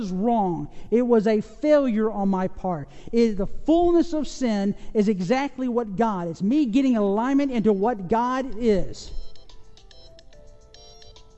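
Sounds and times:
speech: 0.0s - 9.2s
phone ringtone playing a repeating electronic melody: 7.8s - 11.3s.

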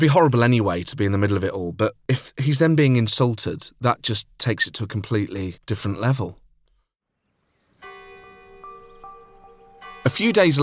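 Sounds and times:
speech: 0.0s - 6.4s, 10.0s - 10.6s
village church bells ringing: 7.8s - 10.6s.

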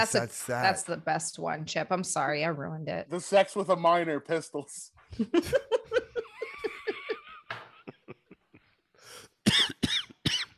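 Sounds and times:
speech: 0.0s - 5.8s
breathy laughter: 5.3s - 8.8s
harsh coughing: 7.8s - 10.5s.

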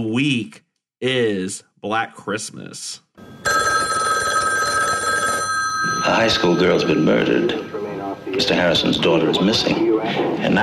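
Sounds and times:
speech: 0.0s - 3.5s, 6.0s - 10.6s
telephone bell ringing: 3.3s - 7.7s.

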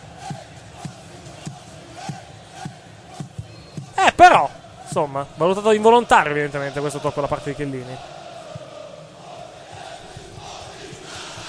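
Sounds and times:
roar of stadium crowd at a football match: 0.0s - 11.4s
speech: 4.0s - 8.2s
football fan shouting close to the microphone: 4.0s - 11.4s.

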